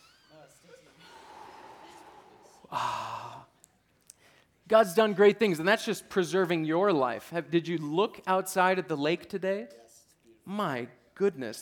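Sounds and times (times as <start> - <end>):
group taking a deep breath together in fresh mountain air: 1.0 - 4.6
speech: 4.7 - 9.8, 10.5 - 11.6.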